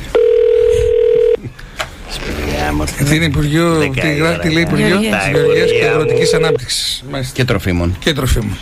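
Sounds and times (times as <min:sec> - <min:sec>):
telephone ringing tone on a call to a ministry switchboard: 0:00.2 - 0:01.4, 0:05.2 - 0:06.6
speech: 0:03.0 - 0:08.6.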